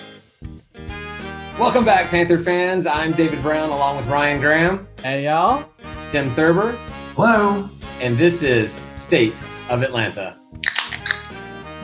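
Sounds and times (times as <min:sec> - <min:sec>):
speech: 0:01.6 - 0:10.6
beer can cracking open: 0:10.6 - 0:11.4.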